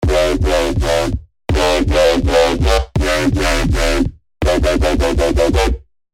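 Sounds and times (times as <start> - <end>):
filtered hard bass: 0.0 - 5.9.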